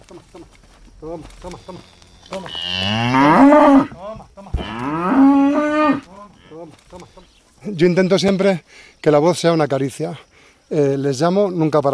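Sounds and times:
speech: 0.1 - 4.9, 7.0 - 11.9
cow mooing on a farm in Carcaboso: 1.7 - 4.0, 4.6 - 6.6.

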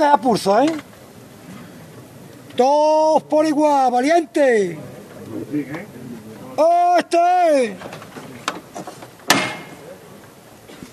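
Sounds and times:
speech: 0.0 - 0.9, 2.6 - 4.9, 5.5 - 6.0, 6.6 - 8.0
murmur of crowd voices: 0.0 - 10.9
procession float knocker strike: 9.2 - 9.9.

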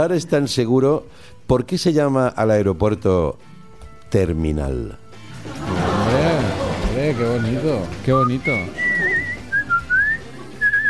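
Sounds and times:
speech: 0.0 - 3.5, 4.1 - 5.7, 7.0 - 8.8
laughter: 5.4 - 10.8
person whistling a short melodic phrase: 7.3 - 10.8.

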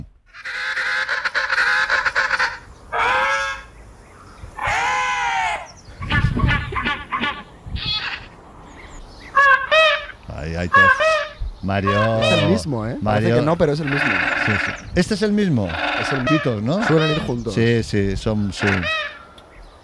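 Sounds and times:
penguin braying and honking calls: 0.3 - 3.7, 4.6 - 8.4, 9.3 - 14.9, 15.6 - 17.7, 18.5 - 19.3
speech: 11.7 - 19.0.

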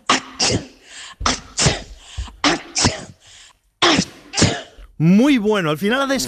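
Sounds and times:
person sneezing: 0.0 - 4.8
speech: 0.5 - 1.3, 5.0 - 6.2.

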